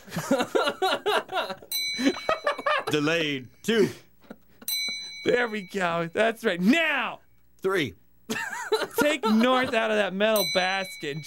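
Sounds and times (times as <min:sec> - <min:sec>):
laughter-like vocal sounds: 0:00.0 - 0:02.9, 0:08.3 - 0:09.8
speech: 0:00.1 - 0:00.8, 0:02.9 - 0:04.1, 0:05.2 - 0:08.4, 0:09.0 - 0:11.2
bell ringing: 0:01.6 - 0:03.7, 0:04.6 - 0:07.4, 0:08.3 - 0:11.2.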